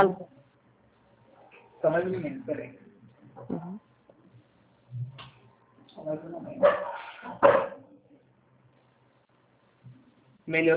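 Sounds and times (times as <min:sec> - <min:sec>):
speech: 0:00.0 - 0:00.3, 0:01.8 - 0:02.8, 0:03.4 - 0:03.8, 0:06.0 - 0:07.7, 0:10.5 - 0:10.7
dog barking over a phone call: 0:06.6 - 0:07.9.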